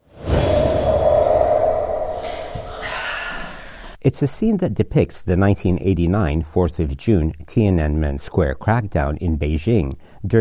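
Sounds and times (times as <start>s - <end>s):
low sustained whoosh: 0.0s - 3.8s
faint hum: 0.1s - 4.0s
speech: 4.0s - 10.4s.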